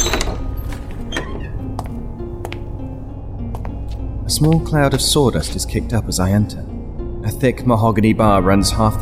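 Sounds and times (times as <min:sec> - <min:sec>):
heavy door pushed open with wooden thunks and knocks: 0:00.0 - 0:01.9
speech: 0:04.3 - 0:09.0.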